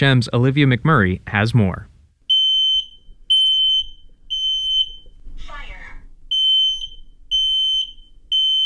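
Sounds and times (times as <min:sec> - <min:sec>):
speech: 0:00.0 - 0:01.9
home smoke alarm test tone: 0:02.3 - 0:05.2, 0:06.3 - 0:08.6.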